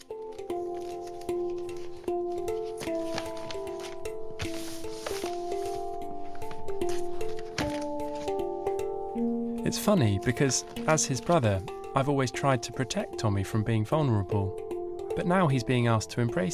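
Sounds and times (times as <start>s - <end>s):
steady stepping melodic music bed: 0.0s - 16.5s
wrapping paper crinkling: 0.3s - 8.4s
speech: 9.7s - 14.6s, 15.2s - 16.5s.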